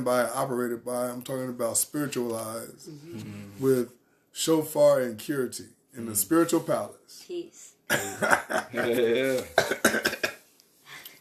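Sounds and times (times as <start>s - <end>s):
speech: 0.0s - 10.3s
person coughing harshly: 7.9s - 10.4s.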